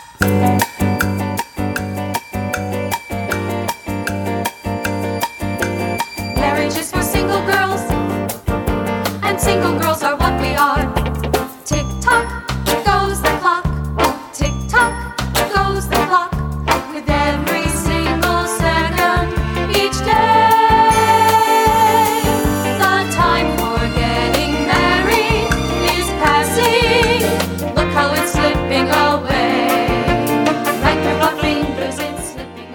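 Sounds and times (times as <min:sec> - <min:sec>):
catchy upbeat Broadway show tune: 0:00.0 - 0:08.4, 0:09.0 - 0:32.7.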